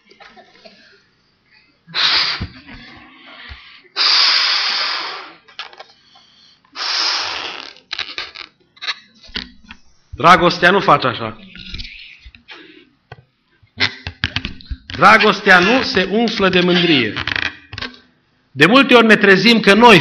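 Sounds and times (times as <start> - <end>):
person blowing up a balloon with forceful breaths: 1.9 - 3.4, 4.0 - 5.4, 6.7 - 8.6
faint rubbery squeaks: 7.4 - 10.2, 13.8 - 17.6
speech: 10.2 - 11.5, 15.0 - 17.3, 18.6 - 20.0.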